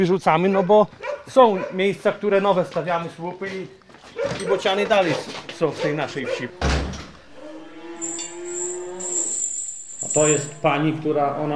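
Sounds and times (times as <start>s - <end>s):
speech: 0.0s - 6.8s, 10.1s - 11.5s
cow from a farmer's herd mooing: 5.5s - 9.4s.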